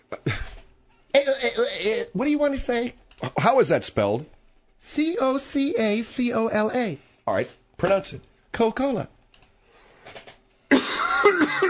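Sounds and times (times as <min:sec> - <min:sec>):
speech: 0:01.8 - 0:04.4, 0:05.0 - 0:09.2
harsh rasping coughs: 0:10.7 - 0:11.6.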